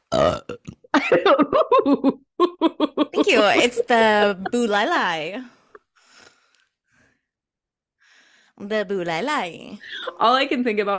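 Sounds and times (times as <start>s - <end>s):
loud burp: 0.0s - 0.9s
laughter: 0.9s - 4.8s
speech: 1.8s - 2.2s, 3.2s - 5.5s, 8.6s - 10.9s.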